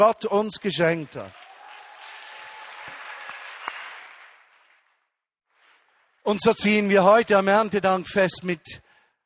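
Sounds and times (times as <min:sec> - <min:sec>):
speech: 0:00.0 - 0:01.4, 0:06.3 - 0:08.8
audience applauding: 0:01.0 - 0:06.3.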